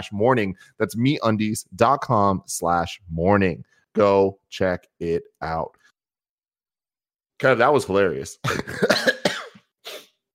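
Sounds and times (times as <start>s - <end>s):
speech: 0.0s - 5.8s, 7.4s - 9.1s
phlegmy coughing from coffee phlegm: 8.5s - 10.2s.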